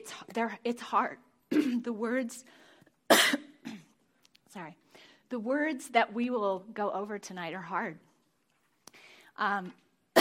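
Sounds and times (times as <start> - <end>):
speech: 0.0 - 3.3, 4.5 - 8.1, 9.4 - 9.8
man coughing after drinking water: 3.1 - 3.9.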